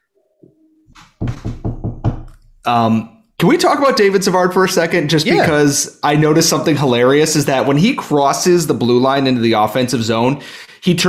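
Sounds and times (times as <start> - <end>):
knocks on a wooden surface: 1.0 - 2.3
speech: 2.6 - 11.0.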